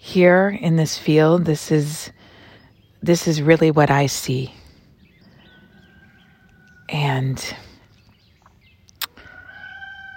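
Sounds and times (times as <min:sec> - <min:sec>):
speech: 0:00.1 - 0:02.2, 0:03.0 - 0:04.6, 0:06.9 - 0:07.7
rooster crowing in a field: 0:05.6 - 0:06.9, 0:09.1 - 0:10.1.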